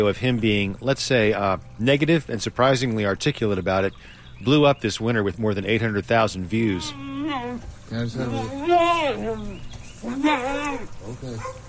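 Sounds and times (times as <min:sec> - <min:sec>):
speech: 0:00.0 - 0:11.6
mule braying loudly: 0:06.6 - 0:11.6.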